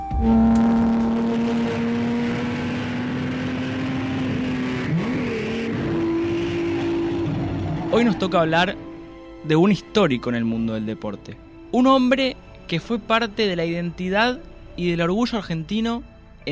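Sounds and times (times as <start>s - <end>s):
race car engine revving: 0.2s - 8.9s
speech: 8.0s - 16.4s.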